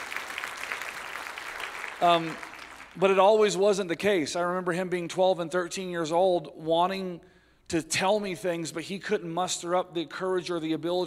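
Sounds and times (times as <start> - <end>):
audience applause: 0.0 - 3.1
speech: 2.0 - 11.0.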